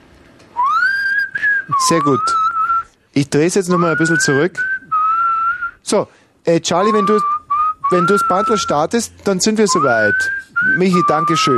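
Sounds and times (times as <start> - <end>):
person whistling a sustained rising note during a sound check: 0.6 - 2.9, 3.7 - 5.8, 6.8 - 8.9, 9.5 - 11.5
speech: 1.7 - 2.4, 3.2 - 4.7, 5.9 - 7.3, 7.9 - 11.5.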